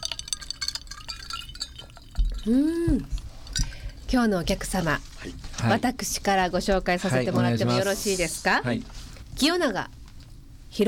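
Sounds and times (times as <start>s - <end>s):
glasses clinking together in a toast at a bar: 0.0s - 4.2s
speech: 2.4s - 3.2s, 4.1s - 10.0s.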